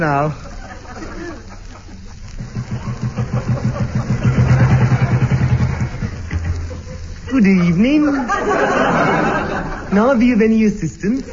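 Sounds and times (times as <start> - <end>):
speech: 0.0 - 0.4, 7.3 - 9.2, 9.9 - 11.3
laughter: 0.3 - 10.2
motorcycle engine puttering: 2.2 - 7.4.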